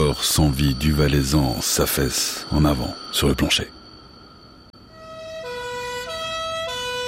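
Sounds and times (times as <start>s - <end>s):
speech: 0.1s - 3.8s
two-tone hi-lo ambulance siren wailing: 5.1s - 7.0s.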